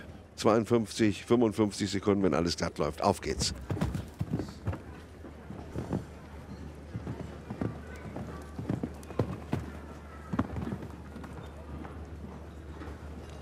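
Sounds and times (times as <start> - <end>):
speech: 0.4 - 4.0
grey horse cantering hoofbeats on soft ground in a show-jumping round: 3.3 - 13.3.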